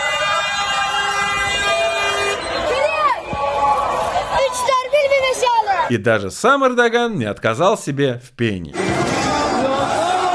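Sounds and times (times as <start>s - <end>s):
long steady car horn blaring: 0.0s - 2.6s
street celebration crowd shouting and cheering in Turkey: 0.0s - 6.0s, 8.7s - 10.3s
speech: 5.9s - 8.8s.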